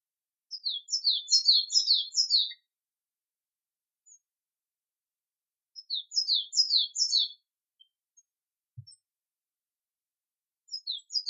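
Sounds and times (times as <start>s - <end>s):
native forest bird song of high sweeping downward chirps: 0.5s - 2.7s, 5.8s - 9.1s, 10.7s - 11.2s.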